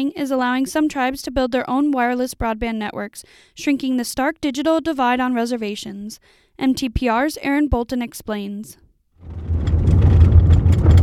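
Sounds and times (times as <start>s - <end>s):
speech: 0.0s - 9.5s
road noise on a rugged gravel road along a creek: 9.2s - 11.0s
vehicle engine rumble driving up a rugged gravel road: 9.2s - 11.0s.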